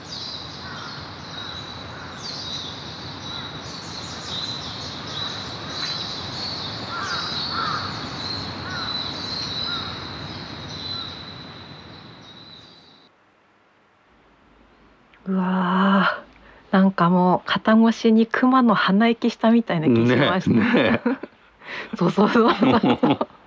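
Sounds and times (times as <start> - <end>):
birds chirping at sunrise: 0.0 - 13.1, 14.6 - 23.4
hissy outdoor ambient noise: 0.0 - 23.4
crows cawing at sunrise: 0.6 - 2.2, 6.9 - 8.0, 8.6 - 9.0, 9.6 - 10.0
speech: 16.7 - 23.3
laughter: 19.9 - 23.4.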